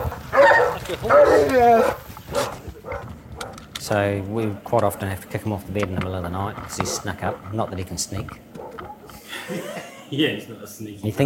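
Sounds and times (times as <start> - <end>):
Great Dane barking: 0.0 - 3.7, 6.8 - 7.6, 8.4 - 9.2
speech: 0.9 - 2.6, 3.8 - 8.5, 9.5 - 11.2
laughter: 9.1 - 10.4.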